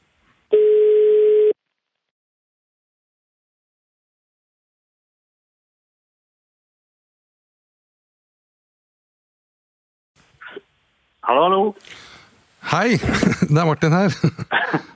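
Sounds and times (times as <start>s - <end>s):
telephone ringback tone of an outgoing call: 0.5s - 1.6s
speech: 11.2s - 12.0s, 12.6s - 14.9s
laughter: 12.7s - 14.9s.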